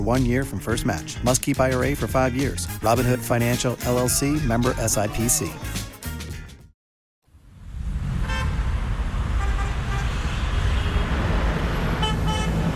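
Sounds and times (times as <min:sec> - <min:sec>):
speech: 0:00.0 - 0:05.8
traffic noise on busy city streets of Rabat, Morocco: 0:07.3 - 0:12.7
car horn toots on city streets of Rabat, Morocco: 0:08.2 - 0:08.6, 0:12.0 - 0:12.7.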